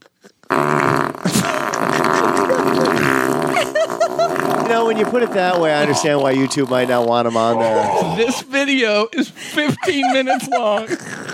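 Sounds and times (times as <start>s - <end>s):
fart: 0.0s - 8.4s
laughter: 1.3s - 11.3s
speech: 4.7s - 11.3s.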